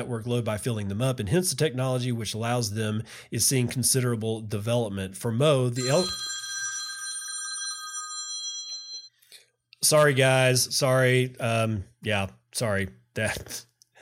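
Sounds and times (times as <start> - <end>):
speech: 0.0 - 6.3, 9.8 - 14.0
mobile phone ringtone: 5.8 - 9.2.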